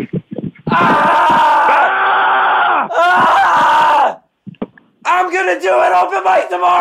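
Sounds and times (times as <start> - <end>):
two people screaming in unison: 0.7 - 4.3
speech: 5.4 - 6.8.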